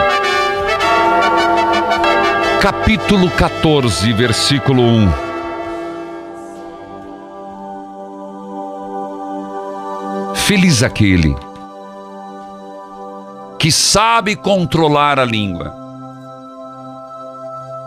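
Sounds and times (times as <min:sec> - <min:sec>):
sustained brassy horn note blown to wake people: 0:00.0 - 0:08.3
church bells rung by the sacristan: 0:00.0 - 0:11.4
speech: 0:02.6 - 0:05.3, 0:10.5 - 0:11.5, 0:13.6 - 0:15.8.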